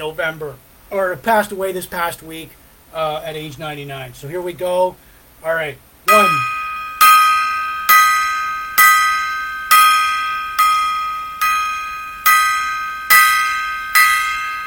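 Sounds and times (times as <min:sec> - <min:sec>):
speech: 0:00.0 - 0:06.5
gong being struck: 0:06.1 - 0:14.6.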